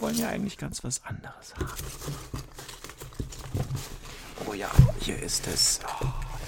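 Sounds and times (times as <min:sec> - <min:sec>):
speech: 0:00.1 - 0:02.5, 0:04.5 - 0:06.2
packaging rustling and crinkling while rummaging through a box of miniatures: 0:01.6 - 0:06.4.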